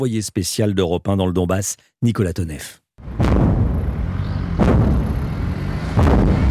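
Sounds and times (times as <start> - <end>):
speech: 0.0 - 3.5
deep rolling rumble of artillery: 3.0 - 6.4
artillery fire booming: 3.1 - 5.3, 5.9 - 6.4.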